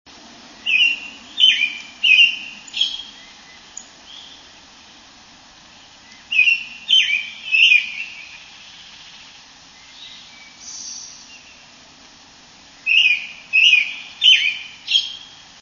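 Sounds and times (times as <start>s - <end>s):
American robin singing with high note suffix: 0.6s - 4.6s, 5.6s - 11.7s, 12.8s - 15.5s.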